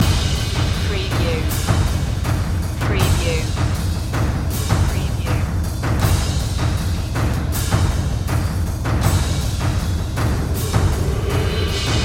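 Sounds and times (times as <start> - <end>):
percussion loop: 0.0 - 12.0.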